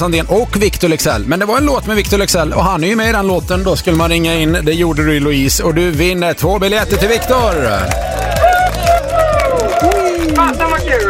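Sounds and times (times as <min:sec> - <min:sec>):
speech: 0:00.0 - 0:08.2
few voices cheering and shrieking excitedly: 0:06.7 - 0:11.0.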